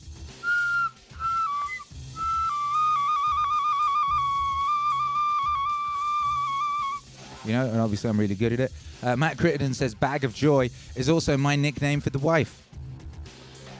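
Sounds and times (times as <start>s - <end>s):
small wooden whistle blown: 0.4s - 7.1s
speech: 7.5s - 12.6s.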